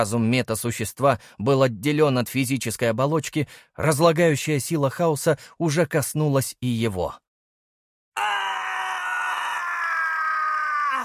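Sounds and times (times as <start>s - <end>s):
speech: 0.0s - 7.2s
wild insane scream echoing through a stone hall: 8.2s - 11.0s.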